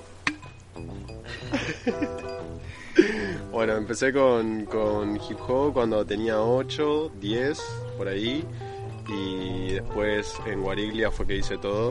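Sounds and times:
glasses clinking in a toast: 0.3 - 2.7
laughter: 1.3 - 3.4
speech: 1.5 - 11.8.

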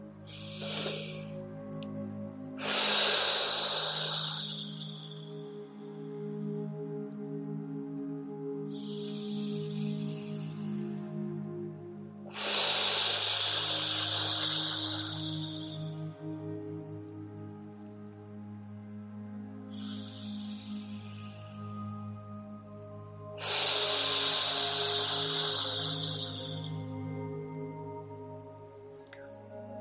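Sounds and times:
deep breaths in and out during a guided breathing exercise: 0.0 - 18.6, 19.2 - 29.7
steady low drone: 0.0 - 29.7.

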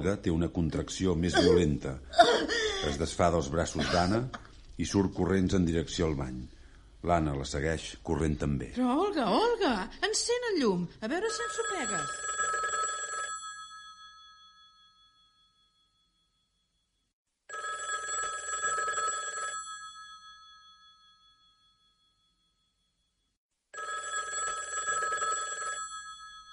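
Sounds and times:
speech: 0.0 - 12.3
old-style telephone bell ringing: 11.3 - 16.4, 17.5 - 22.5, 23.8 - 26.5.

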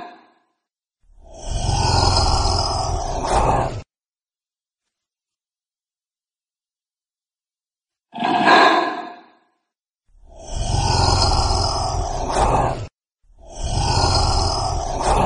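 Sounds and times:
lizards grunting with tonal calls and breathy growls: 1.2 - 3.8, 10.3 - 15.2.

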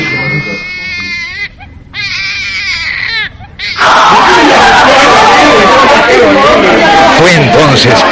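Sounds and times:
newborn baby crying in wavering wails: 0.0 - 4.4
overlapping crowd chatter and commotion: 0.0 - 8.1.

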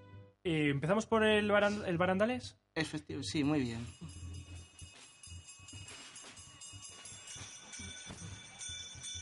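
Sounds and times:
speech: 0.4 - 4.2
two handbells rung by a bell-ringer at the head of a religious procession: 3.5 - 9.2.

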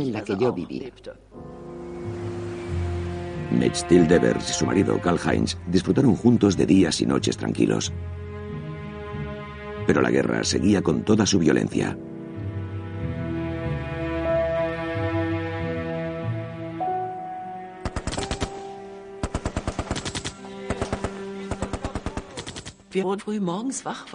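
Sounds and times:
speech: 0.0 - 1.5, 3.5 - 8.2, 9.9 - 12.1, 23.0 - 24.1
sustained music: 1.3 - 23.7
machine gun fire as a salute marking the end of the war: 17.8 - 22.8.

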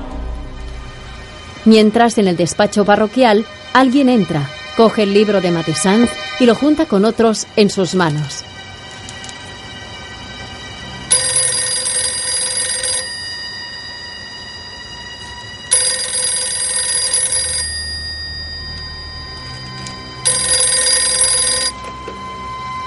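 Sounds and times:
speech: 1.7 - 8.5
telephone ringing: 11.1 - 22.1.

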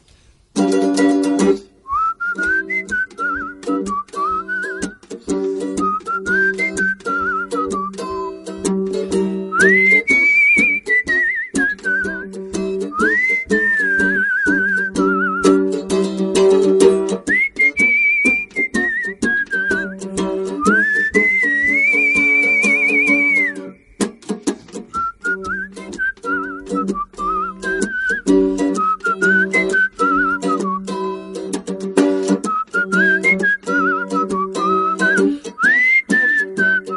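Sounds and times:
steady rhythmic mandolin accompaniment: 0.0 - 36.9
person whistling a lilting melody: 1.8 - 8.8, 9.4 - 15.8, 17.0 - 31.3, 32.2 - 36.9.

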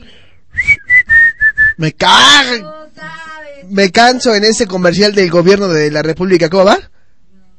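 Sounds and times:
person whistling a tune: 0.5 - 1.8
speech: 1.8 - 2.7, 3.6 - 6.9.

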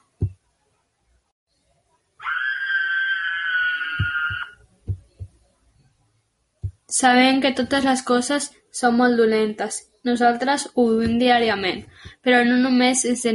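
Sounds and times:
single loud sustained high-pitched scream: 2.2 - 4.6
scattered low dull thumps: 4.0 - 5.4, 6.6 - 6.9, 10.9 - 12.3
speech: 7.0 - 13.3.

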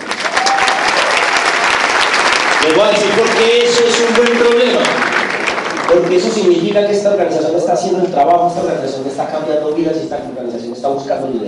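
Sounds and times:
crowd applauding: 0.0 - 7.3
speech: 2.6 - 4.8, 5.9 - 11.4.

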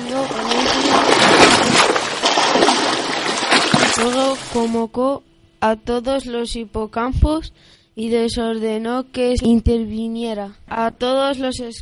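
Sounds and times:
rough stormy sea waves splashing: 0.0 - 4.8
speech: 4.5 - 11.7.

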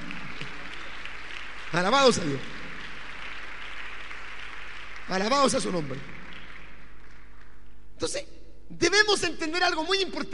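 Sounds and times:
church audience applauding during a sermon: 0.0 - 7.7
speech: 1.7 - 2.6, 5.1 - 6.1, 8.0 - 10.3.

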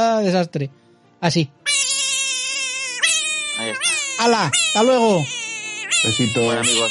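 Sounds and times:
speech: 0.0 - 1.8, 3.6 - 5.4, 6.0 - 6.8
cat meowing: 1.7 - 6.8.

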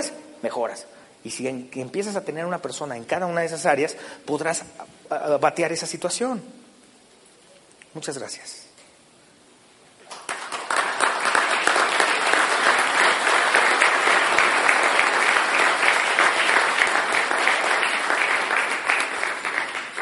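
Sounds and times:
speech: 0.0 - 6.6, 7.9 - 8.7
audience applause after a talk: 10.1 - 20.0.

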